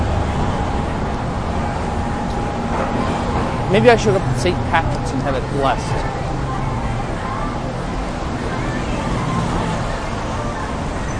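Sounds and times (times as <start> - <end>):
cars rolling past on a city street: 0.0 - 11.1
steady roar of city traffic: 0.0 - 11.1
speech: 3.7 - 6.2.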